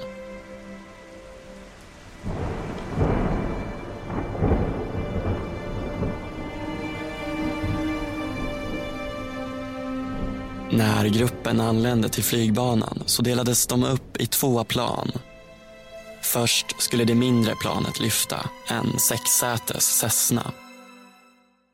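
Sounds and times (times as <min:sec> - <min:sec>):
steady rain of a thunderstorm: 0:00.0 - 0:20.0
deep rolling thunderclap: 0:02.2 - 0:11.8
speech: 0:10.8 - 0:15.3, 0:16.3 - 0:20.7.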